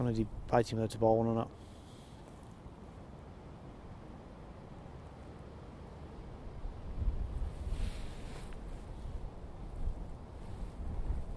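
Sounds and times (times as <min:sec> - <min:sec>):
speech: 0:00.0 - 0:01.7
strong gusty outdoor wind buffeting a microphone: 0:06.5 - 0:11.3.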